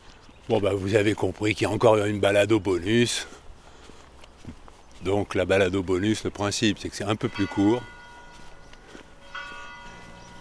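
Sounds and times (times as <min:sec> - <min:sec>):
speech: 0:00.5 - 0:03.4, 0:05.0 - 0:08.0
church bell ringing from the bell tower at Camiran, France: 0:07.1 - 0:10.3.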